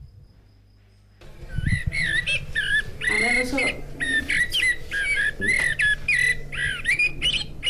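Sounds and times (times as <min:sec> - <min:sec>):
faint low hum: 0:00.0 - 0:07.6
blackbird song from a bird clock: 0:01.5 - 0:07.6.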